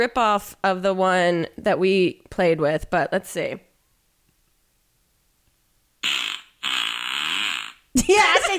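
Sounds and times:
speech: 0:00.0 - 0:03.7, 0:08.0 - 0:08.5
loud flatulent fart sound effect: 0:06.0 - 0:07.9.

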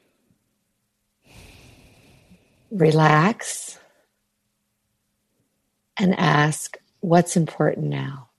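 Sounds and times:
slow deep breathing: 0:01.2 - 0:02.7
speech: 0:02.7 - 0:03.8, 0:06.0 - 0:08.3.

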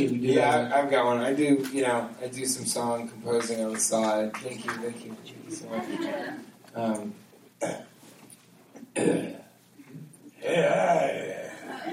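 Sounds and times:
speech: 0:00.0 - 0:07.9, 0:09.0 - 0:09.4, 0:10.4 - 0:11.9
laughter: 0:05.5 - 0:06.4, 0:11.2 - 0:11.9
person clearing throat before singing: 0:07.6 - 0:07.9, 0:08.8 - 0:10.1.

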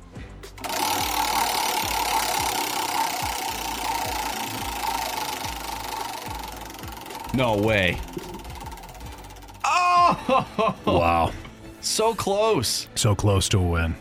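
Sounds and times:
prize wheel spinning, pointer ticking in sharp clicks: 0:00.5 - 0:10.8
steady mid-pitched hum: 0:00.6 - 0:09.6
speech: 0:07.4 - 0:08.3, 0:10.3 - 0:13.9
laughter: 0:09.7 - 0:11.4.

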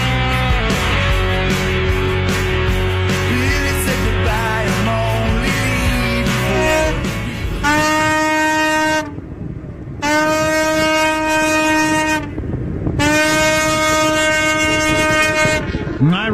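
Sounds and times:
ship horn blasting: 0:00.0 - 0:16.1
low rumbling background: 0:00.0 - 0:16.3.

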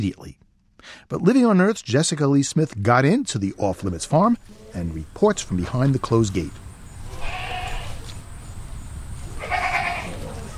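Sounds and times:
speech: 0:00.0 - 0:06.6
steady low outdoor rumble: 0:01.2 - 0:10.5
goats or sheep bleating on a farm: 0:07.0 - 0:08.1, 0:09.4 - 0:10.5.

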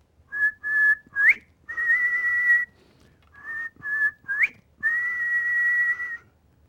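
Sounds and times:
person whistling in the front yard to call a dog: 0:00.4 - 0:02.8, 0:03.4 - 0:06.3.

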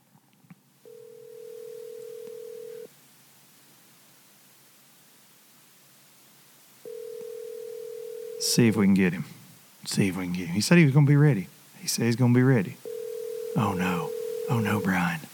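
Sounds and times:
faint hiss of line noise: 0:00.0 - 0:15.3
outgoing phone call ringback tone: 0:00.8 - 0:02.9, 0:06.9 - 0:08.6, 0:12.8 - 0:15.1
speech: 0:08.4 - 0:12.8, 0:13.6 - 0:15.3.

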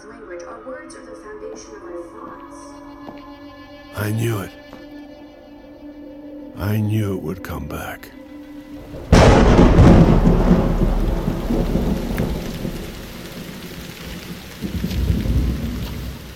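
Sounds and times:
speech: 0:00.3 - 0:04.7, 0:06.6 - 0:08.2
steady heavy rain: 0:08.7 - 0:16.3
thunder in a powerful afternoon storm: 0:08.8 - 0:16.3.

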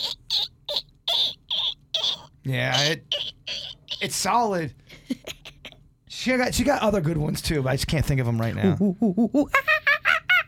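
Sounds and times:
woman imitating dolphin squeaks: 0:00.0 - 0:04.1
speech: 0:02.4 - 0:03.2, 0:04.0 - 0:05.3, 0:06.2 - 0:09.7.

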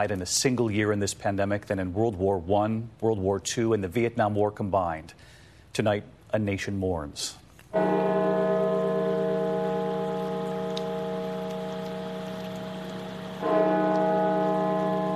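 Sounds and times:
speech: 0:00.0 - 0:08.3
large bells of a cathedral tolling: 0:07.8 - 0:15.1.

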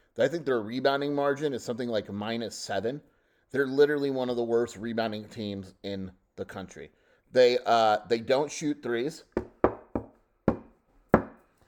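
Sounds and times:
speech: 0:00.2 - 0:09.5
sharp knocks on wood: 0:09.4 - 0:11.4.

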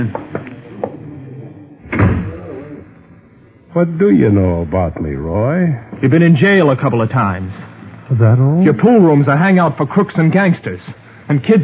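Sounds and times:
speech: 0:00.0 - 0:00.2, 0:03.7 - 0:11.6
door pulled shut with a solid thud: 0:01.8 - 0:02.5.

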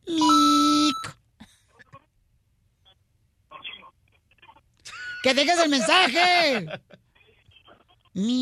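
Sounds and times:
voice imitating an answering machine beep: 0:00.0 - 0:01.2
laughter: 0:04.9 - 0:07.0
speech: 0:05.2 - 0:07.0, 0:08.2 - 0:08.4.

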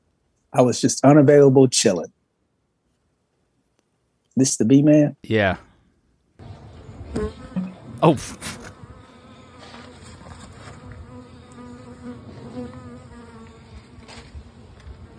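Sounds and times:
speech: 0:00.5 - 0:02.2, 0:04.4 - 0:05.7, 0:08.0 - 0:08.6
swarm of many bees buzzing: 0:07.0 - 0:14.1.

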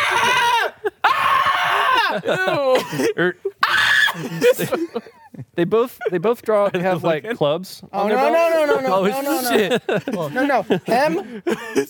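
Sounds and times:
person role-playing screeching shrilly at a lizard: 0:00.0 - 0:02.8, 0:03.6 - 0:04.5
person yelping and making vocal noises: 0:00.0 - 0:03.0, 0:03.6 - 0:04.7
laughter: 0:00.0 - 0:07.4, 0:08.6 - 0:11.8
speech: 0:02.2 - 0:11.8.

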